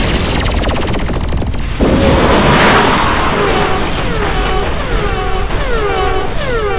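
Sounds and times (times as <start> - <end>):
spaceship weapon fire rapid pulses: 0.0 - 5.4
falling electronic whines: 0.0 - 6.7
loud sustained crashing blast of weapon fire hitting a main shield generator: 0.0 - 6.7.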